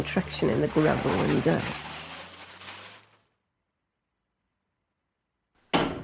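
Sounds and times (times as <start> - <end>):
speech: 0.0 - 1.9
brief rushing noise: 0.6 - 3.3
door banging open: 5.8 - 6.0.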